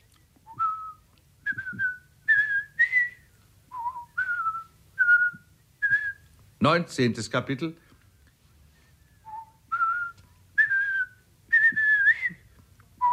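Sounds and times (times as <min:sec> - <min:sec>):
man whistling a jaunty march tune: 0:00.4 - 0:06.3, 0:09.2 - 0:13.1
speech: 0:06.6 - 0:07.8.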